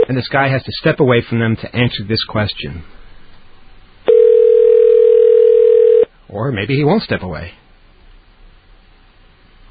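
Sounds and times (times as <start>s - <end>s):
speech: 0.1s - 3.0s, 6.3s - 7.6s
telephone ringback tone on a call to Long Island, New York: 4.1s - 6.1s.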